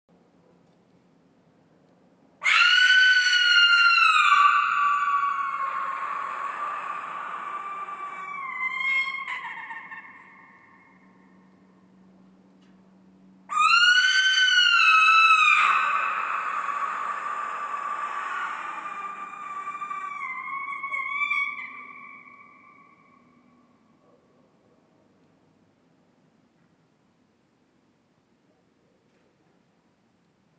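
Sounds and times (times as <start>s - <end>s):
barn owl screams: 2.4s - 11.6s, 13.5s - 23.9s.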